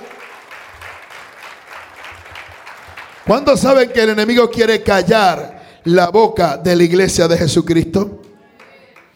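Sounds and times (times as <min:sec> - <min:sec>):
audience applauding loudly: 0:00.0 - 0:04.4, 0:08.5 - 0:09.1
speech: 0:03.3 - 0:08.2.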